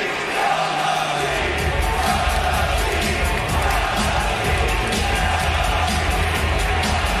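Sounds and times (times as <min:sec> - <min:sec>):
arena crowd chanting a slogan: 0:00.0 - 0:07.1.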